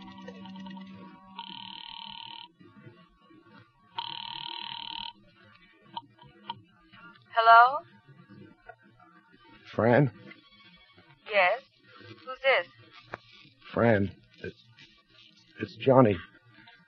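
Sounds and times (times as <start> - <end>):
telephone ringing with electronic buzzing tones: 0.0 - 2.6, 3.9 - 5.2
person answering the telephone: 1.4 - 2.5, 4.0 - 5.2
speech: 7.4 - 7.9, 9.8 - 10.2, 13.8 - 14.2, 15.8 - 16.3.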